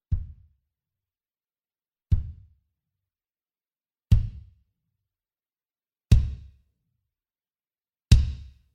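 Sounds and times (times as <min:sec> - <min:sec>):
kick drum hits: 0:00.1 - 0:00.4, 0:02.1 - 0:02.5, 0:04.1 - 0:04.5, 0:06.1 - 0:06.4, 0:08.1 - 0:08.5.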